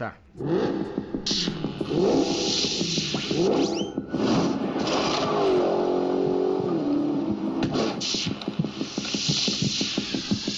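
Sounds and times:
speech: 0:00.0 - 0:04.0
nearly 800 horsepower muscle car engine revving: 0:00.3 - 0:10.5.

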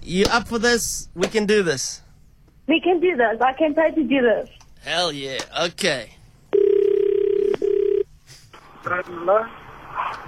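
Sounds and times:
faint noise: 0:00.0 - 0:10.2
speech: 0:00.1 - 0:02.0, 0:02.7 - 0:06.2, 0:08.9 - 0:09.6
phone call ring tone on the line: 0:06.5 - 0:08.1.

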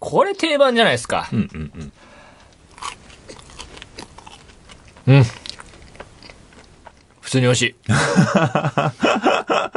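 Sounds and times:
speech: 0:00.1 - 0:02.0, 0:05.1 - 0:05.4, 0:07.3 - 0:09.7
quiet chewing: 0:02.3 - 0:07.9
crunch of biting into a custard-filled cream puff: 0:02.7 - 0:07.0
laughter: 0:07.9 - 0:09.7.

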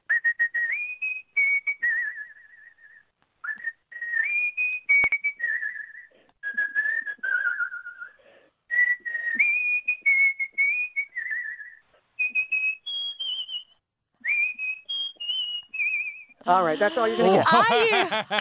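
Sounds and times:
person whistling a pop song melody: 0:00.1 - 0:16.4
short breaths: 0:06.0 - 0:06.4, 0:08.1 - 0:09.4, 0:16.4 - 0:17.4
laughter: 0:16.5 - 0:18.4
speech: 0:16.5 - 0:18.4.

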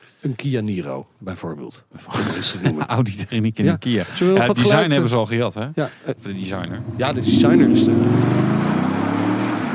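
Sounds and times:
speech: 0:00.2 - 0:08.5
laughter: 0:02.1 - 0:05.1
V8 car engine driving past: 0:06.7 - 0:09.7.

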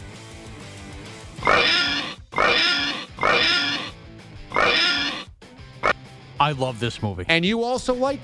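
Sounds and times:
short clipped pig grunt: 0:01.4 - 0:03.9, 0:04.5 - 0:05.3
pig oinking and squealing: 0:01.4 - 0:06.0
speech: 0:06.4 - 0:08.2.

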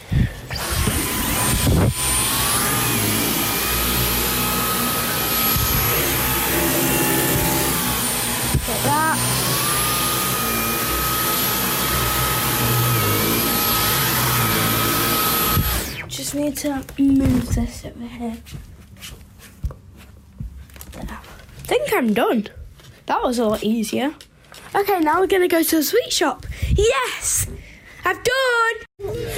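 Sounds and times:
vacuum cleaner running: 0:00.4 - 0:16.2
speech: 0:16.5 - 0:18.7, 0:21.9 - 0:29.3.

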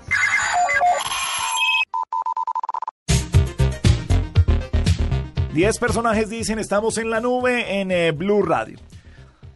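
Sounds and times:
cell phone alarm ringtone bright electronic melody: 0:00.0 - 0:02.8
cell phone alarm rapid steady beeps: 0:00.1 - 0:02.9
loud busy rhythmic ringtone tune with punchy hits: 0:03.1 - 0:06.5
speech: 0:05.6 - 0:08.9.

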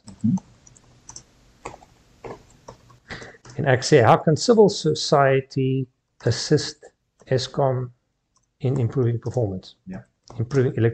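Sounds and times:
typing on a computer keyboard: 0:00.1 - 0:03.6
speech: 0:00.2 - 0:00.5, 0:03.6 - 0:08.0, 0:08.6 - 0:10.9.

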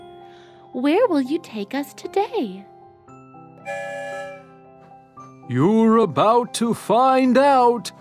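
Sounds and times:
speech: 0:00.7 - 0:02.7, 0:03.7 - 0:04.5, 0:05.5 - 0:08.0
loud breathy train whistle blast: 0:03.6 - 0:04.6.

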